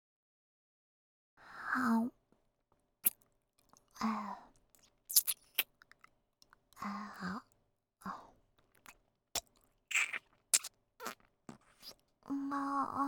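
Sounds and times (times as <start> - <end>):
speech: 1.8 - 2.2, 4.0 - 4.4, 6.8 - 8.2, 12.3 - 13.0
person chewing food while eating: 4.8 - 6.6, 8.7 - 12.0.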